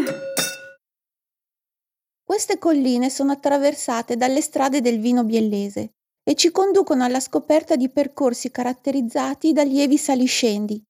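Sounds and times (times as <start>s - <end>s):
wine glasses clinking in a toast: 0.0s - 0.8s
speech: 2.3s - 10.8s.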